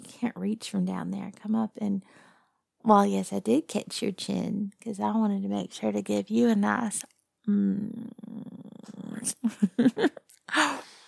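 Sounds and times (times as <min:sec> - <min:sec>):
speech: 0:00.2 - 0:10.8
cat purring: 0:07.5 - 0:09.5.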